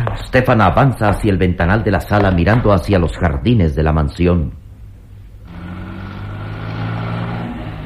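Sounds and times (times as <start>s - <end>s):
speech: 0.2s - 4.6s
car engine rumbling: 4.6s - 7.8s.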